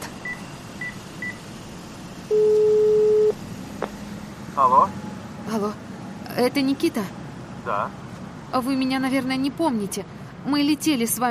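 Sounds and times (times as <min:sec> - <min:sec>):
short beeps: 0:02.3 - 0:03.4
telephone ringing tone while calling someone: 0:02.3 - 0:03.4
speech: 0:04.6 - 0:05.8, 0:06.4 - 0:11.2.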